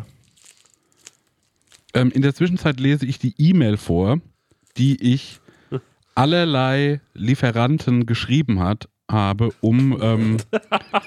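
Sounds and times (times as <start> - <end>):
adhesive tape peeling off silicone: 0.0 - 2.0
speech: 2.0 - 11.0
laughter: 10.4 - 11.0.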